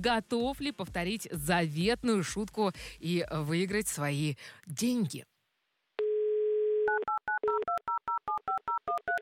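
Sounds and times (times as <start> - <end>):
speech: 0.0 - 5.3
telephone dial tone: 6.0 - 9.2.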